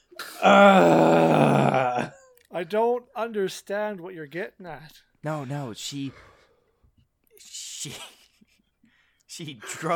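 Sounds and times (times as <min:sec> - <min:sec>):
person imitating a loud groan: 0:00.2 - 0:02.1
speech: 0:00.4 - 0:01.6, 0:02.6 - 0:06.3, 0:07.4 - 0:08.2, 0:09.3 - 0:09.9.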